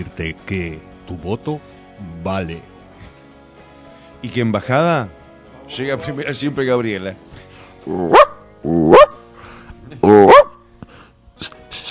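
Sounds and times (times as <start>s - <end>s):
speech: 0.0s - 2.7s, 4.2s - 7.2s, 7.8s - 8.8s
family dog barking: 8.1s - 9.2s, 10.1s - 10.6s.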